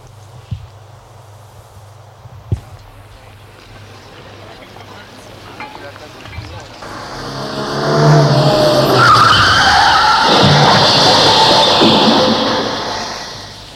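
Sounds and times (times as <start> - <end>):
roaring rush of noise: 6.2 - 13.7
car tires screeching in a skid: 6.8 - 13.7
low hum: 6.8 - 13.7.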